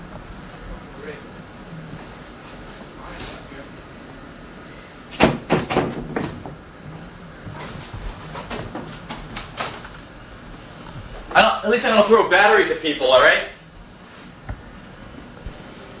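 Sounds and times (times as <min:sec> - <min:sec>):
damaged door being rattled and knocked about: 0:05.1 - 0:06.7, 0:07.6 - 0:09.9
speech: 0:11.7 - 0:13.5.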